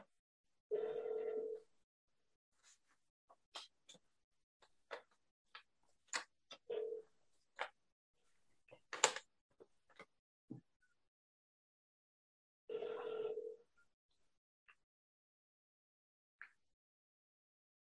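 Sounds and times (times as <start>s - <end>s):
electronic ringing tones from a phone on speaker: 0.7s - 1.7s, 6.6s - 7.0s, 12.7s - 13.7s
sharp clicks and taps: 8.7s - 9.3s.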